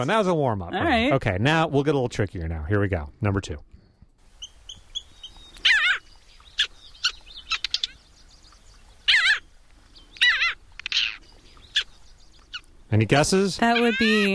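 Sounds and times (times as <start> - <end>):
speech: 0.0 - 3.7, 12.9 - 14.3
parasitic jaeger harsh nasal calls: 4.4 - 8.0, 9.0 - 9.5, 10.2 - 12.7, 13.6 - 14.3.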